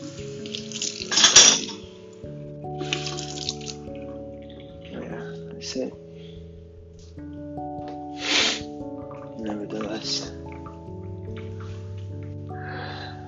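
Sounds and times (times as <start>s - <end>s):
water splashing while washing dishes: 0.0s - 5.4s, 7.9s - 13.1s
dishes clattering while being washed: 0.5s - 2.0s
speech: 5.7s - 6.1s.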